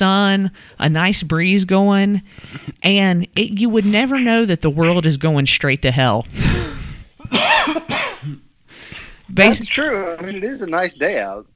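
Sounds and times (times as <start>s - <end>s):
speech: 0.0s - 6.7s, 7.3s - 8.4s, 9.3s - 11.5s
harsh choking coughs from bourbon going down the wrong way: 6.4s - 8.5s.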